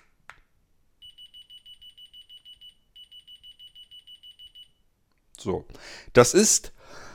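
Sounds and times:
high-pitched electronic alarm beeping, triggered by a remote control button: 1.0s - 4.8s
speech: 5.4s - 7.0s.

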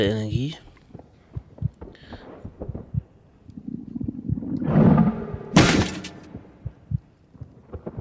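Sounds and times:
speech: 0.0s - 0.6s
rumble: 0.5s - 7.9s
thumping video game heartbeat sound effect: 1.3s - 5.6s, 6.3s - 7.9s.

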